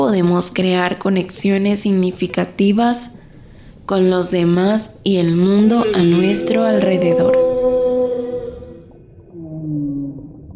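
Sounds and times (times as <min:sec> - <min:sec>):
speech: 0:00.0 - 0:03.2, 0:03.9 - 0:07.5
humpback whale song: 0:05.5 - 0:10.5.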